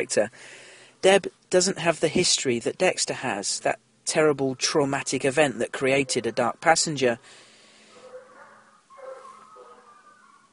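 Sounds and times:
speech: 0.0s - 7.5s
faint hunting hounds barking and baying: 5.9s - 6.5s, 7.8s - 10.5s.

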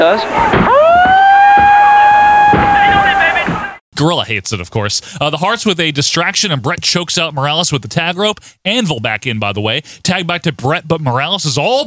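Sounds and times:
speech: 0.0s - 0.7s, 4.0s - 11.8s
siren wailing: 0.0s - 3.8s.

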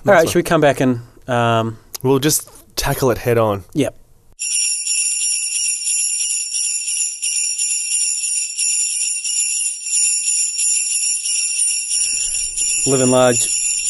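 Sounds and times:
speech: 0.0s - 4.7s, 12.8s - 13.6s
sleigh bells jingling: 4.4s - 13.8s.

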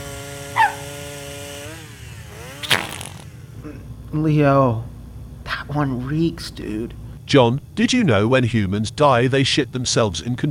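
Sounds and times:
chainsaw running: 2.6s - 3.3s
speech: 3.6s - 4.9s, 5.7s - 10.4s.

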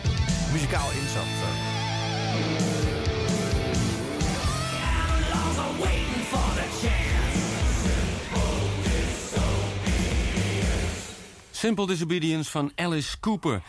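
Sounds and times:
hard rock music with distorted guitars and pounding drums: 0.0s - 11.6s
speech: 0.6s - 2.6s, 11.6s - 13.6s
raspy yelled vocal: 4.3s - 11.2s.

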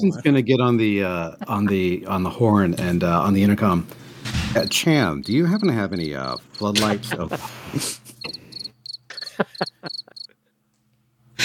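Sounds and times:
speech: 0.0s - 8.0s
laughter: 1.1s - 3.6s, 4.6s - 10.4s
crickets chirping: 4.5s - 6.8s, 8.2s - 10.3s.

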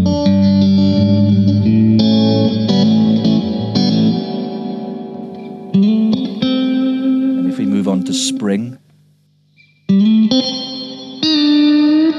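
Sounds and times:
electric guitar chords through a big plate reverb: 0.0s - 8.8s, 9.6s - 12.1s.

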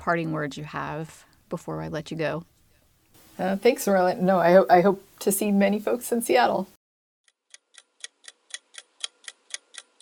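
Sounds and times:
speech: 0.0s - 2.5s, 3.4s - 6.8s
clock ticking: 7.5s - 9.9s.

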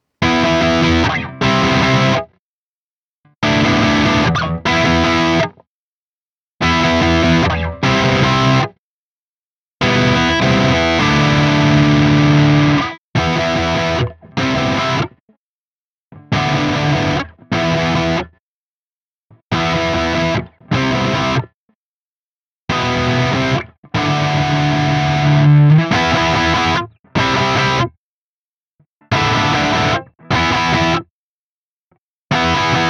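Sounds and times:
distorted electric guitar through a humbucker neck pickup playing chords: 0.2s - 2.2s, 3.4s - 5.5s, 6.6s - 8.7s, 9.8s - 15.1s, 16.2s - 18.3s, 19.5s - 21.5s, 22.7s - 27.9s, 29.1s - 31.0s, 32.3s - 32.8s.

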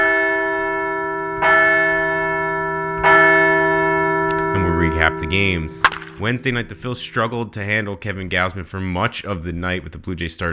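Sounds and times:
large bell tolling: 0.0s - 7.9s
speech: 5.0s - 10.5s.

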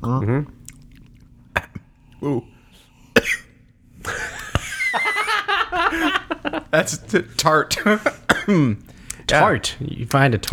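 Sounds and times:
speech: 0.2s - 0.6s, 2.2s - 2.5s, 6.7s - 10.5s
person sipping bourbon: 0.4s - 2.7s
laughter: 4.0s - 8.7s.

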